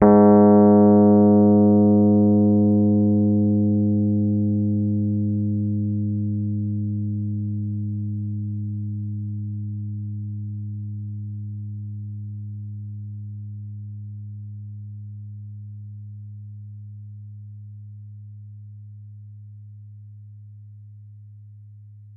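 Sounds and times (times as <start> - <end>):
Rhodes Mark II 88-key electric piano note G#2: 0.0 - 8.8.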